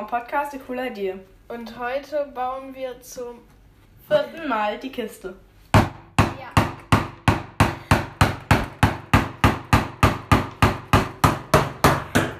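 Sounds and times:
speech: 0.0 - 5.5
hammer driving a chisel into wood while building a wooden box: 5.7 - 12.3.

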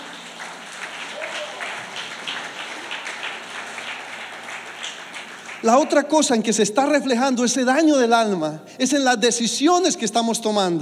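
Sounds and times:
congregation applauding: 0.0 - 6.4
speech: 5.6 - 10.7.

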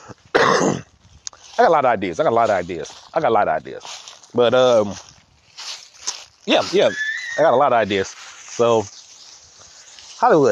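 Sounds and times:
harsh cough with throat clearing: 0.0 - 0.9
speech: 1.6 - 5.1, 6.4 - 9.0, 10.2 - 10.4
quiet breathing: 9.6 - 10.2.

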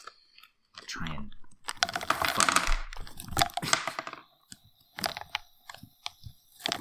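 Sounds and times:
peanuts plopping into fizzing bottle of Coke: 1.6 - 6.7
fizzing bottle of Coke: 1.8 - 6.7.

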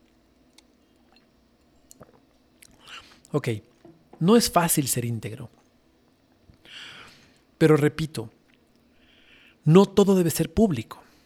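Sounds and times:
person sipping tea: 0.6 - 3.9
speech: 3.3 - 5.6, 7.6 - 8.4, 9.6 - 11.0.

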